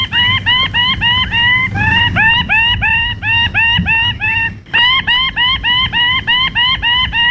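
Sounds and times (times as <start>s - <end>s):
low rumble: 0.0s - 5.8s
male bird with ruby plumes shrieking during courtship display: 0.0s - 7.2s.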